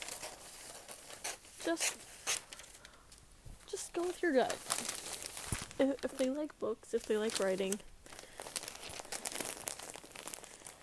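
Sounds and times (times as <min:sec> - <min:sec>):
wrapping paper being crinkled: 0:00.0 - 0:03.0, 0:03.7 - 0:10.8
speech: 0:01.6 - 0:02.4, 0:03.7 - 0:04.9, 0:05.8 - 0:07.9.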